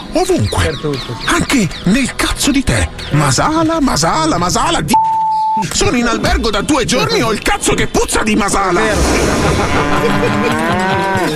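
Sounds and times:
speech: 0.2s - 11.3s
laughter: 8.8s - 11.3s
cow mooing: 9.7s - 11.3s.

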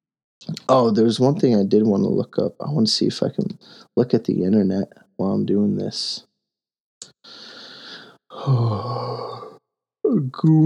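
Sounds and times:
speech: 0.7s - 6.3s, 8.4s - 9.2s, 10.2s - 10.6s
person yawning: 8.3s - 10.2s.

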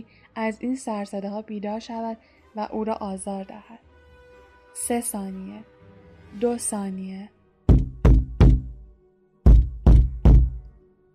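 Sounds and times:
speech: 0.0s - 3.9s, 4.8s - 5.7s, 6.3s - 7.4s
heavy knocking on a wooden door: 7.7s - 8.8s, 9.5s - 10.6s.

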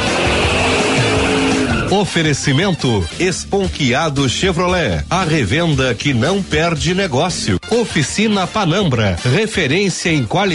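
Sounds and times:
race car engine roaring in a radio jingle: 0.0s - 2.2s
tires squealing in a radio jingle: 0.0s - 2.3s
speech: 1.9s - 10.5s.

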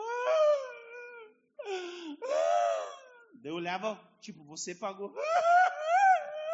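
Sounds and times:
voice imitating the mournful wailing of a hired funeral mourner: 0.0s - 3.3s, 5.1s - 6.5s
speech: 3.4s - 5.8s.

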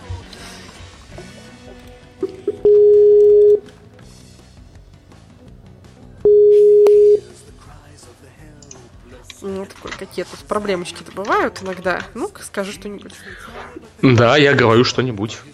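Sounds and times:
faint busy background: 0.0s - 15.5s
Skype call dialing tones: 2.3s - 3.6s, 6.3s - 7.3s
speech: 10.2s - 15.5s.

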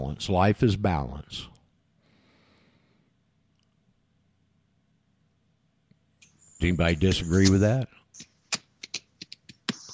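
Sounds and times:
speech: 0.1s - 1.5s, 6.6s - 8.3s
typing on a computer keyboard: 8.2s - 9.8s.

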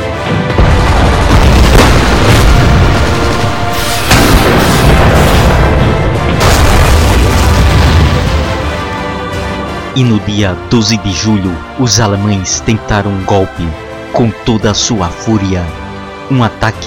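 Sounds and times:
heavy artillery fire: 0.3s - 8.9s
explosions from armoured units being destroyed: 0.3s - 9.0s
speech: 10.0s - 16.8s.

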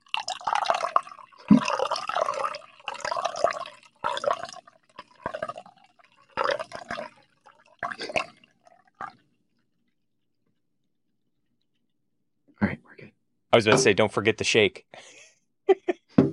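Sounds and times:
liquid pouring into a container: 0.0s - 9.4s
speech: 13.6s - 15.2s.

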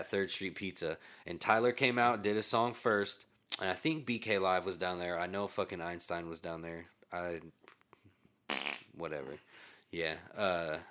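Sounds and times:
speech: 0.0s - 7.6s, 9.0s - 10.8s
person making fart noises with voice: 8.5s - 9.0s.

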